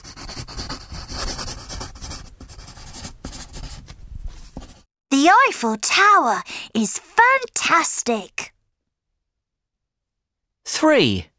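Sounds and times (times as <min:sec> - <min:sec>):
pencil drawing a picture on paper: 0:00.0 - 0:04.9
speech: 0:05.2 - 0:08.4, 0:10.8 - 0:11.3.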